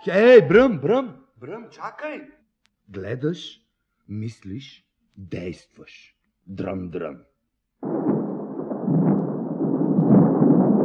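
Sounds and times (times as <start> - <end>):
speech: 0.0 - 8.0
thunder rumbling: 7.8 - 10.8.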